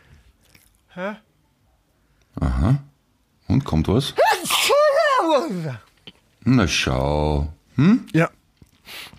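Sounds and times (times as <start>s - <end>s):
speech: 1.0s - 1.3s, 3.6s - 4.6s, 5.2s - 9.1s
loud sneeze: 4.2s - 5.8s.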